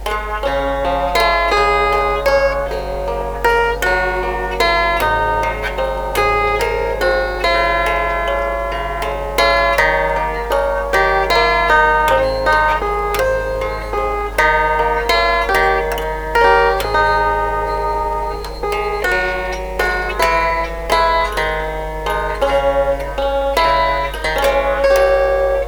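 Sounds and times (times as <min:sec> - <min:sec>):
chordophone string instrument: 0:00.0 - 0:25.6.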